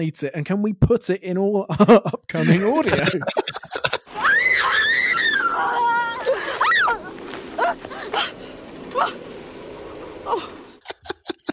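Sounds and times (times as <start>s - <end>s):
speech: 0.0s - 3.9s
laughter: 1.7s - 4.2s, 5.8s - 8.4s, 10.4s - 11.5s
woman's exaggerated falling scream: 4.1s - 8.3s.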